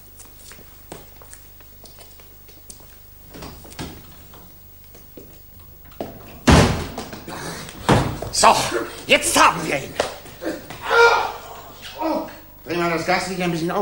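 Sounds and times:
door thudding as a visitor is let in: 6.1s - 7.2s, 7.8s - 8.4s
speech: 8.4s - 10.0s, 12.8s - 13.8s.

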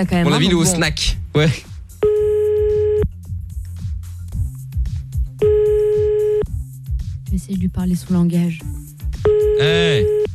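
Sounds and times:
speech: 0.0s - 1.7s, 7.5s - 8.8s, 9.6s - 10.3s
low rhythmic notes: 0.0s - 10.3s
telephone busy signal beeps: 2.0s - 3.1s, 5.4s - 6.4s, 9.3s - 10.3s.

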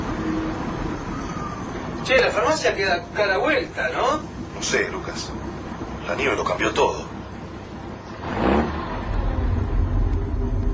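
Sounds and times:
truck driving slowly through snow with low engine rumble: 0.0s - 10.7s
speech: 2.1s - 5.4s, 6.1s - 7.1s.

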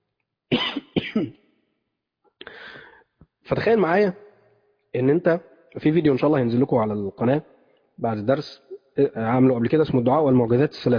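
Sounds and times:
harsh coughing from someone with a mild cold: 0.5s - 1.4s
speech: 1.2s - 1.4s, 3.5s - 4.2s, 5.0s - 10.9s.

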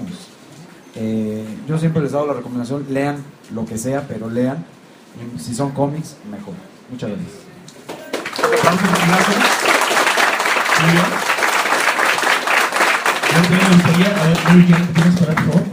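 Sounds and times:
speech: 1.0s - 7.5s, 8.5s - 9.6s, 10.8s - 11.3s, 13.3s - 15.7s
audience applause at a comic-themed talk event: 7.9s - 15.7s.

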